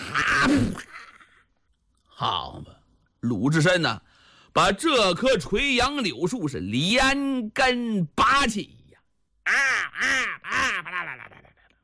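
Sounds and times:
speech: 0.5 - 0.9, 2.2 - 8.8, 9.5 - 10.7
human voice imitating a crow cawing: 9.4 - 11.6.

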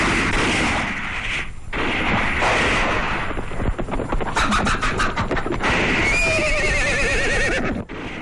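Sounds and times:
gunshots in rapid bursts: 0.0 - 6.3, 7.9 - 8.1
horses whinnying: 4.4 - 7.8.

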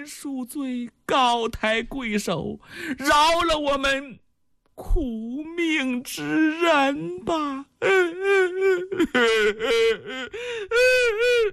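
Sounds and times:
speech: 0.0 - 4.2, 4.8 - 11.5
single voice imitating a father and daughter wailing and sobbing: 6.3 - 11.5.

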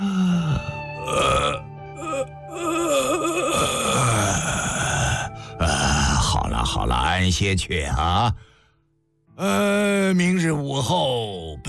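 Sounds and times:
man's voice imitating a long drawn-out yawn: 0.0 - 6.4, 9.4 - 10.1
speech: 7.2 - 8.4, 10.2 - 11.4.

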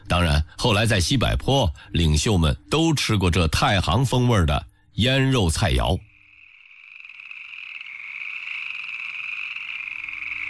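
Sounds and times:
speech: 0.1 - 6.1
chorus of frogs croaking at night in Nanniwan China: 4.1 - 10.4.

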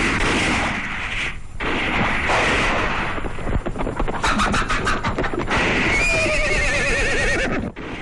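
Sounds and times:
gunshots heard from outside: 0.0 - 6.4, 7.6 - 8.0
horse whinnying: 5.9 - 7.7.

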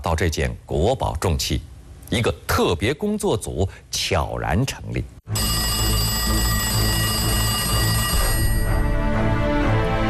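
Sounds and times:
speech: 0.0 - 5.5
old-fashioned telephone bell ringing: 5.3 - 9.0.

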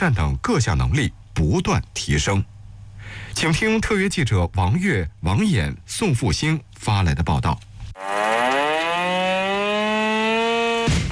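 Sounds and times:
speech: 0.0 - 2.5, 3.1 - 8.1
urgent alarm siren at an army brigade camp in China: 8.0 - 10.9.

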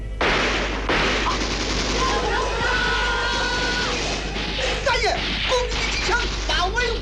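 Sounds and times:
heavy continuous gunfire outside a hall: 0.2 - 6.9
people shouting: 1.9 - 5.1.

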